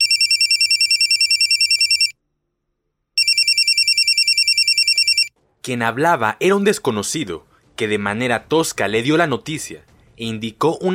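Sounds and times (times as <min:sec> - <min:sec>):
telephone ringing: 0:00.0 - 0:02.2, 0:03.2 - 0:05.4
speech: 0:05.6 - 0:10.9.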